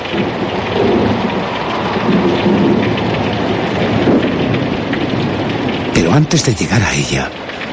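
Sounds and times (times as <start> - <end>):
low rumbling thunder: 0.0 - 5.9
heavy rain pouring in a thunderstorm: 0.0 - 7.7
speech: 6.2 - 7.5.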